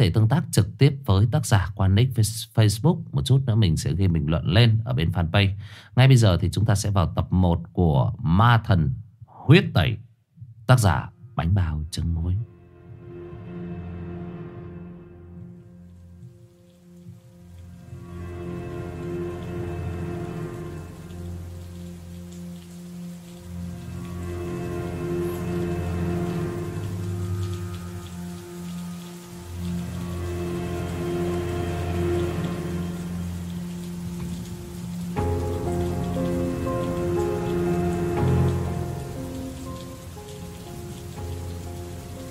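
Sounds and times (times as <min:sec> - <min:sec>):
speech: 0:00.0 - 0:10.0, 0:10.7 - 0:12.5
heavy rain pouring onto an asphalt road: 0:17.7 - 0:42.2.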